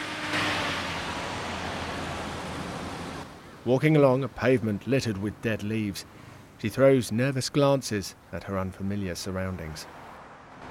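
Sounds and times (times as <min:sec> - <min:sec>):
bus engine hum pulling away from a stop on a busy downtown road: 0:00.0 - 0:03.3
loud steady traffic noise on a busy downtown road: 0:00.0 - 0:10.6
speech: 0:03.6 - 0:10.0.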